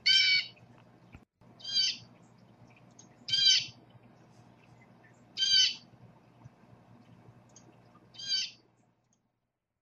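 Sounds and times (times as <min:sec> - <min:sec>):
blue jay common call: 0:00.0 - 0:00.6, 0:01.6 - 0:02.1, 0:03.2 - 0:03.8, 0:05.3 - 0:05.9, 0:08.1 - 0:08.6
faint low hum: 0:00.0 - 0:09.8.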